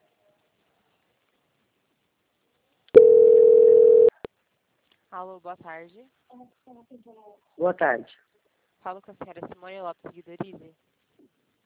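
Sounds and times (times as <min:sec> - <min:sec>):
telephone line tone while a call is transferred: 0:03.0 - 0:04.2
speech: 0:05.2 - 0:10.9.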